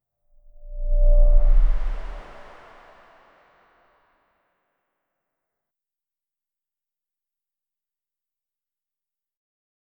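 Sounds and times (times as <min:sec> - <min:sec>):
gentle swoosh: 0:00.4 - 0:03.8.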